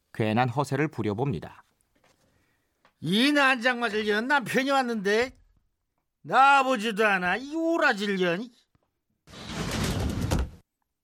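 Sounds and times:
speech: 0.2s - 1.7s, 3.0s - 5.4s, 6.2s - 8.6s
room door sliding open with a rasping scrape: 9.3s - 10.6s.

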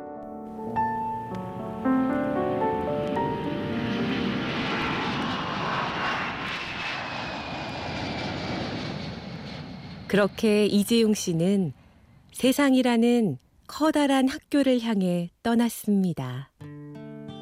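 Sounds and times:
jet airplane engine spooling up and roaring at takeoff: 2.2s - 12.3s
speech: 10.1s - 11.8s, 12.4s - 16.7s.

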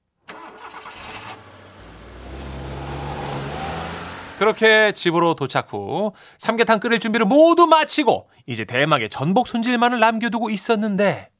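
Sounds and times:
car engine cranking, starting and driving off: 0.3s - 5.0s
speech: 4.4s - 11.3s.

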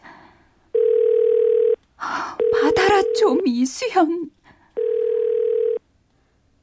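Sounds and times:
telephone ringback tone: 0.7s - 1.8s, 2.4s - 3.4s, 4.8s - 5.8s
speech: 3.2s - 4.4s.

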